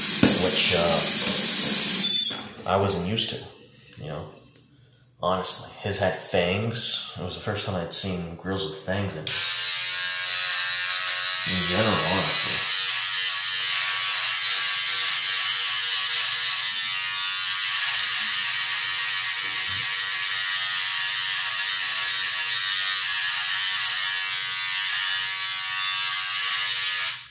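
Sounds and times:
electric razor shaving: 0.0s - 2.2s, 9.3s - 27.2s
speech: 0.5s - 1.2s, 2.7s - 4.4s, 5.2s - 9.5s, 11.4s - 12.3s.

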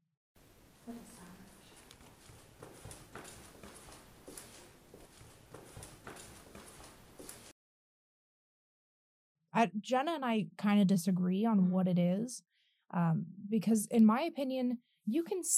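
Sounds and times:
running footsteps on a hard floor in a hallway: 1.5s - 7.5s
speech: 9.6s - 15.5s.

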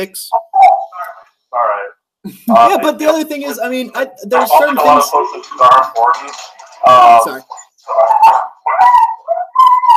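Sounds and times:
speech: 0.0s - 0.5s, 1.5s - 8.9s
puppy barking and yelping: 8.0s - 9.9s.

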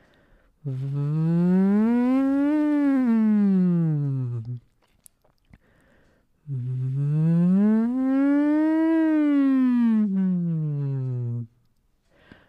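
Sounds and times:
speech: 0.6s - 1.3s
voice humming siren-like glissandi through a straw as a vocal exercise: 0.6s - 4.6s, 6.5s - 11.5s.

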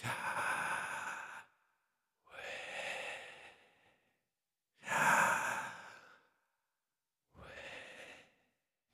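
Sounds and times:
slow deliberate inhale and exhale breaths: 0.1s - 4.2s, 4.8s - 6.6s, 7.4s - 8.6s.

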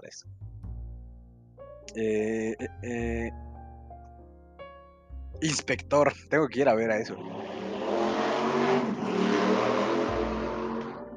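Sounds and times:
speech: 0.1s - 0.4s, 1.9s - 3.5s, 5.4s - 7.6s
several motorcycle engines revving: 7.2s - 11.0s.

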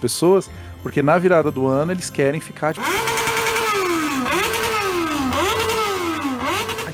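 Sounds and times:
speech: 0.0s - 3.1s
motorcycle engines revving hard: 2.8s - 6.9s.

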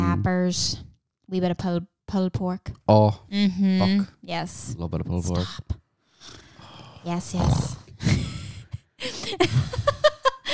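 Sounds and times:
speech: 0.2s - 6.4s, 7.0s - 8.2s, 9.0s - 9.9s
heavy noisy breathing: 6.0s - 9.7s
laughter: 8.0s - 10.5s.

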